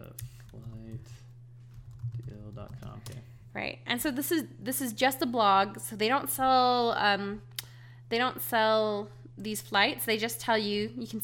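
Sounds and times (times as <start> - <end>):
typing on a computer keyboard: 1.7 - 3.2
speech: 2.6 - 7.5, 8.1 - 11.2.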